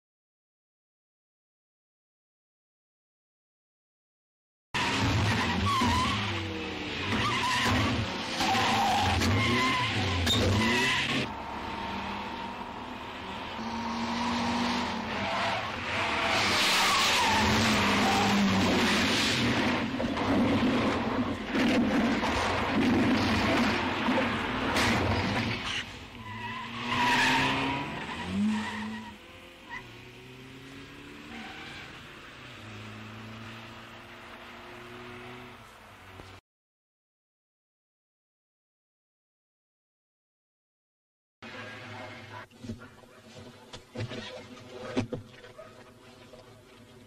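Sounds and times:
getaway car tires squealing: 4.8 - 33.9
getaway car engines roaring: 4.8 - 36.4.

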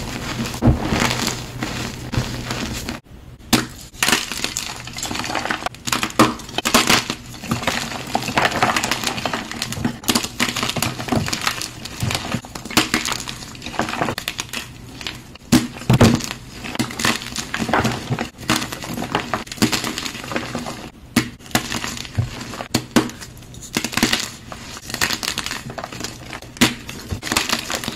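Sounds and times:
crackling crunches and snaps of crushing: 0.0 - 27.9.

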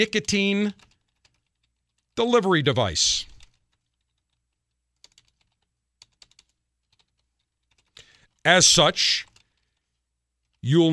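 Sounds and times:
speech: 0.0 - 0.9, 2.2 - 3.3, 8.4 - 9.3, 10.6 - 10.9
typing on a computer keyboard: 0.0 - 2.2, 3.2 - 8.4, 9.2 - 10.6.

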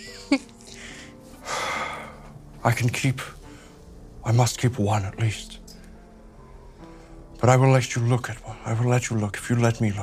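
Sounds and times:
speech: 0.3 - 0.6, 2.6 - 3.4, 4.2 - 5.6, 7.4 - 10.0
heavy breathy exhaling: 0.6 - 2.5, 3.4 - 4.1, 5.7 - 7.4.

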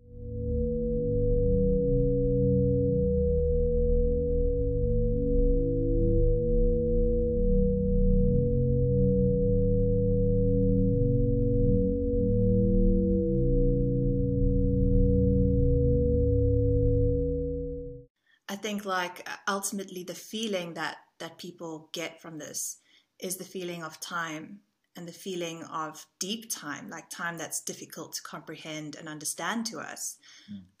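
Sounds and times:
low electronic sine-like tones from sound-art singing rocks: 0.0 - 18.1
speech: 18.7 - 30.7.

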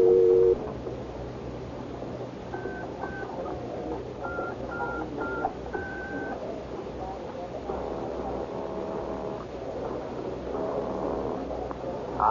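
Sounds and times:
low steady hum: 0.0 - 12.3
dual-tone beeps of a touch-tone phone keypad dialing in a phone booth: 4.3 - 6.4.

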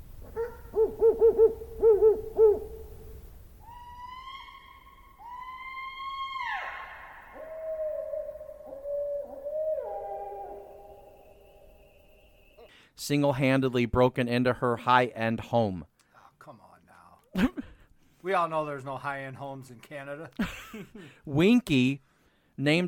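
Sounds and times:
owl hooting: 0.2 - 12.7
long drawn-out tonal wails: 3.6 - 12.6
speech: 13.0 - 15.9, 18.3 - 22.8.

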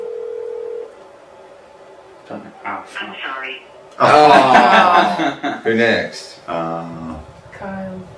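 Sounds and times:
phone ringing tone as a steady electronic hum: 0.0 - 0.9
speech: 2.3 - 8.1
laughter: 4.0 - 5.8.

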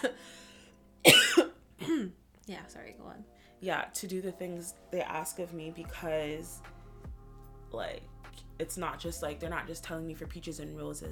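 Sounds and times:
speech: 0.0 - 0.4, 2.5 - 6.7, 7.7 - 11.1
person coughing: 1.0 - 2.2.

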